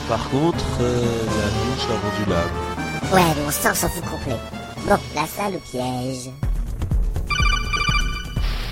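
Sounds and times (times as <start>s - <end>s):
speech: 0.1s - 6.4s
telephone ringtone: 7.3s - 8.6s.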